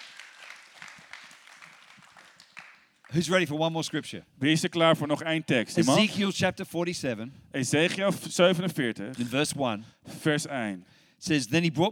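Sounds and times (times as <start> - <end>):
congregation applauding at a church service: 0.0 - 3.3
speech: 3.1 - 11.9.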